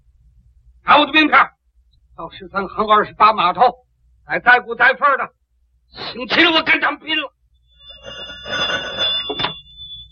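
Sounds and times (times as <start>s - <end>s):
faint steady hum: 0.0s - 10.1s
speech: 0.9s - 1.6s, 2.2s - 7.4s
old telephone bell ringing: 7.6s - 10.1s.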